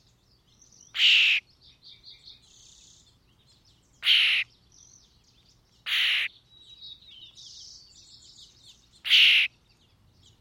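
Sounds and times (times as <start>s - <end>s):
European starling Sturnus vulgaris harsh calls: 0.9s - 1.4s, 4.0s - 4.5s, 5.8s - 6.3s, 9.0s - 9.5s.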